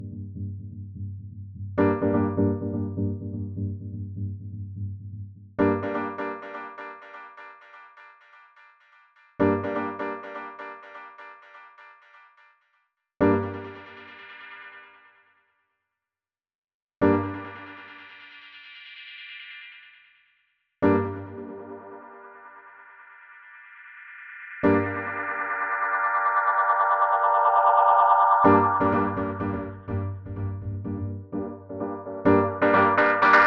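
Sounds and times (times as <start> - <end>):
piano with delay: 1.8 - 3.9, 5.6 - 12.6, 13.2 - 15.0, 17.0 - 18.2, 20.8 - 33.4.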